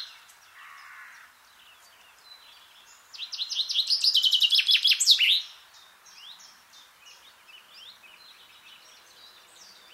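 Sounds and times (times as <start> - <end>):
common chaffinch song: 0.0 - 9.9.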